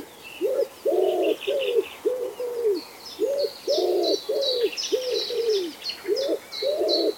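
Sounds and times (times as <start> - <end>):
common wood pigeon cooing: 0.0 - 7.1
small birds chirping: 0.0 - 7.1.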